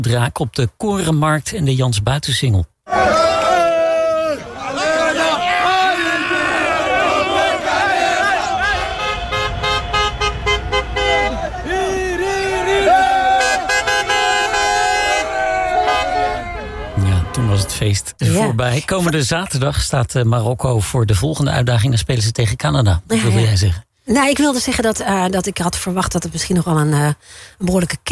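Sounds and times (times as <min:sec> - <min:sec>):
speech: 0:00.0 - 0:03.4, 0:17.7 - 0:28.1
crowd shouting and cheering at a street football celebration: 0:02.9 - 0:17.8
car horns honking at a street football celebration on a Nijmegen square: 0:06.6 - 0:17.8.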